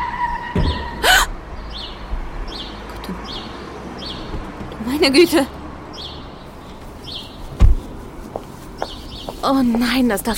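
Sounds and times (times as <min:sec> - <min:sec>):
quiet road noise: 0:00.0 - 0:10.3
dull thud of a car striking a dog: 0:00.5 - 0:01.1, 0:07.6 - 0:07.9
speech: 0:05.0 - 0:05.6, 0:09.5 - 0:10.3.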